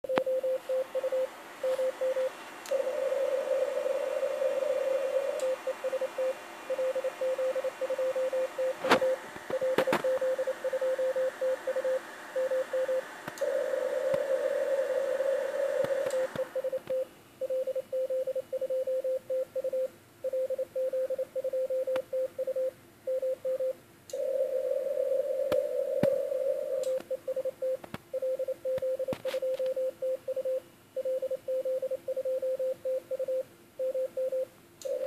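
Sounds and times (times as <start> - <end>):
CW transmission: 0.0 - 35.0.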